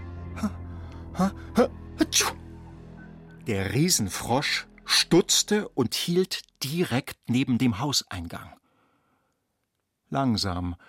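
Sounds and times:
speech: 0.4 - 0.6, 1.2 - 2.4, 3.5 - 8.6, 10.1 - 10.8
voice imitating a girl's sneeze: 1.2 - 2.4.

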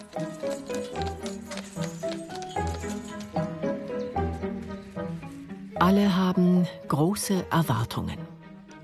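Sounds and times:
horse hooves of a horse-drawn carriage clip-clopping: 0.0 - 5.7
speech: 5.8 - 8.3.

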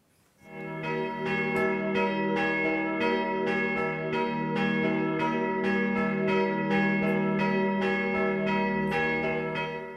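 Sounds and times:
church bells in a church tower in Osterwarngau struck by hand: 0.4 - 9.9.

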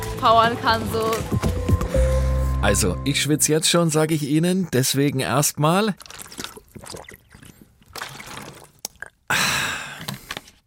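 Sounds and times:
speech: 0.2 - 6.2
water pouring: 5.7 - 9.1
gulping or slurping water: 5.9 - 9.3.

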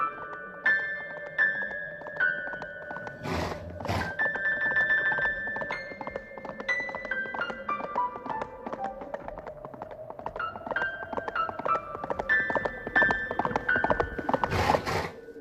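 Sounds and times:
hooves of a hoofed creature clip-clopping through an icicle cave: 0.1 - 15.2
snorting and grunting before a sneeze: 3.1 - 4.2.

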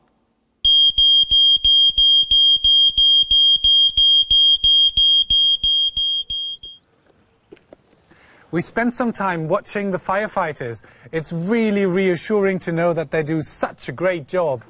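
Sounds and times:
smoke alarm beeping: 0.6 - 6.8
speech: 8.5 - 14.6.

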